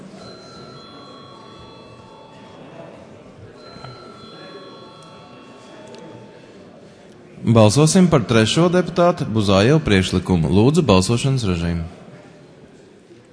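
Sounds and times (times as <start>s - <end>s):
parliamentary bell ringing before a vote: 0.0s - 6.8s
faint indistinct voices: 0.0s - 13.3s
murmur and rustle of a large chamber: 0.0s - 13.3s
speech: 7.4s - 12.0s.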